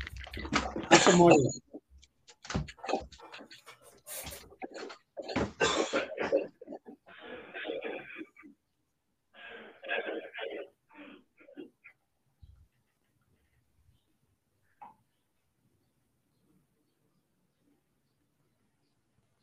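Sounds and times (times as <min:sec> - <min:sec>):
person clearing throat: 0:00.5 - 0:01.6, 0:04.8 - 0:08.6, 0:09.8 - 0:12.0
person coughing in rough broken bursts: 0:00.8 - 0:01.6, 0:05.2 - 0:08.5
speech: 0:01.1 - 0:01.7.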